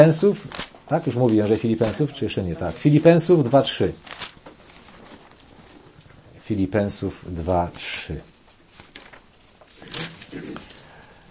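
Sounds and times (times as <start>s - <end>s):
speech: 0.0s - 4.3s, 6.5s - 8.3s
thin Bible pages being flipped: 0.4s - 6.1s, 8.5s - 10.8s.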